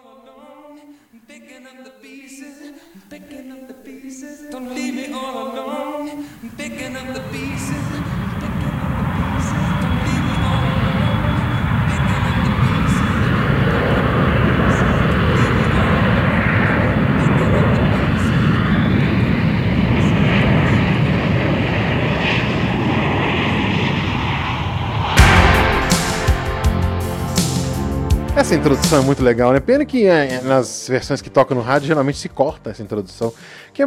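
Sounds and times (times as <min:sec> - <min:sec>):
speech: 0:02.2 - 0:05.8, 0:28.5 - 0:33.8
loud steady jet roar of an airplane taking off: 0:06.2 - 0:29.3.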